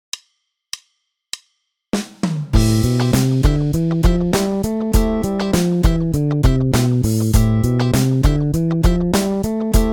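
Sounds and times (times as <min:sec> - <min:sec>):
bass playing aeolian mode exercises: 0:02.6 - 0:09.9.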